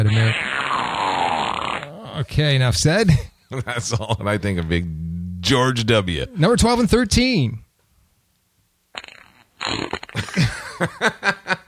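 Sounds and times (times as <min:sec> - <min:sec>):
speech: 0:00.0 - 0:00.6, 0:02.2 - 0:07.6, 0:10.3 - 0:11.4
fart sound effect from a soundboard: 0:00.0 - 0:02.2, 0:08.9 - 0:10.4.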